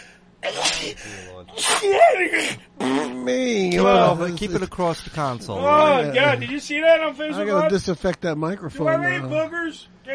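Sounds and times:
sharp intake of breath: 0.0 - 1.4
wet sneeze: 0.4 - 3.1
speech: 0.9 - 10.1.

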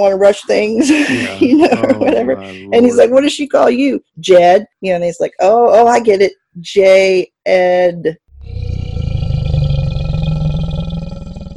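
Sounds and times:
speech: 0.0 - 8.2
laughter: 0.6 - 3.2
person imitating a prowling tiger's roar: 8.4 - 11.5.

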